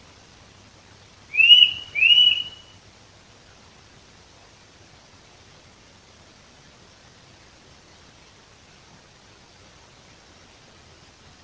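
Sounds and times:
Eurasian nuthatch Sitta europaea giving clear slightly rising whistled notes: 0:01.3 - 0:02.8.

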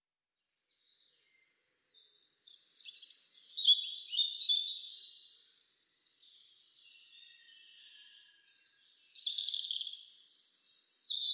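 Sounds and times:
European robin Erithacus rubecula singing warbled phrase: 0:01.5 - 0:05.4, 0:08.6 - 0:11.3.

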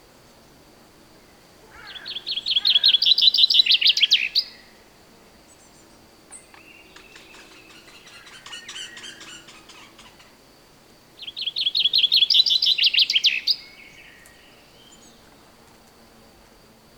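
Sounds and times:
common chaffinch Fringilla coelebs singing: 0:01.7 - 0:04.7, 0:05.5 - 0:10.4, 0:11.2 - 0:15.4.

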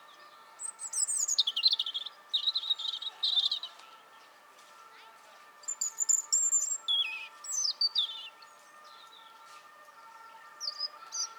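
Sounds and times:
European robin Erithacus rubecula song with high thin notes and scratchy warble: 0:00.0 - 0:04.3, 0:05.6 - 0:09.2.

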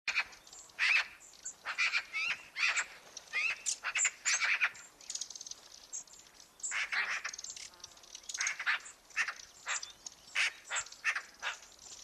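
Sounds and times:
Eurasian magpie Pica pica giving harsh rasping chattering calls: 0:00.1 - 0:04.8, 0:06.7 - 0:07.5, 0:08.4 - 0:11.7.

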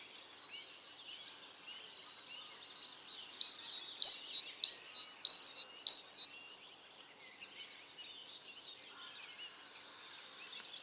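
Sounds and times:
great tit song: 0:00.0 - 0:10.8.

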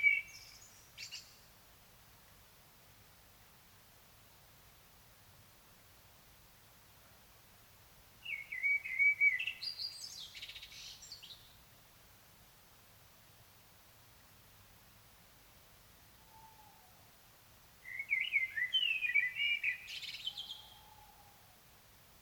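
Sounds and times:
common blackbird Turdus merula twittering song: 0:00.0 - 0:01.4, 0:08.2 - 0:11.6, 0:17.8 - 0:21.3.

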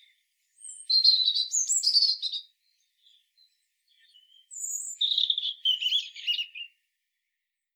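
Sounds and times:
European robin Erithacus rubecula singing: 0:00.0 - 0:06.8.

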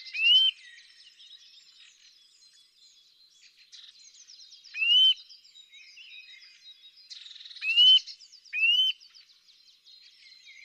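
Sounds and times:
Eurasian nuthatch Sitta europaea calling: 0:00.1 - 0:00.6, 0:04.7 - 0:05.2.

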